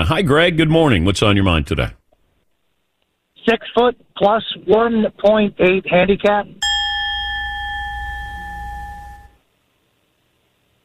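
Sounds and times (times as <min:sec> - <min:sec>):
speech: 0:00.0 - 0:02.0, 0:03.4 - 0:06.6
loud bell ringing: 0:06.6 - 0:09.4
low rumble: 0:06.6 - 0:09.4.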